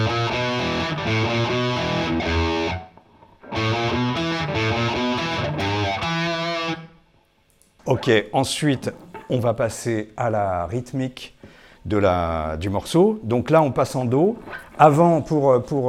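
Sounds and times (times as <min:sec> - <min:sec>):
distorted electric guitar on treble pickup with muted strings playing slowly: 0:00.0 - 0:07.0
speech: 0:07.9 - 0:15.8.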